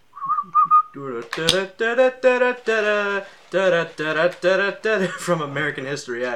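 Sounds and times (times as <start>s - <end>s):
person whistling a hymn-like melody: 0.1s - 1.0s
voice singing a tune without words: 0.2s - 5.2s
speech: 1.0s - 6.3s.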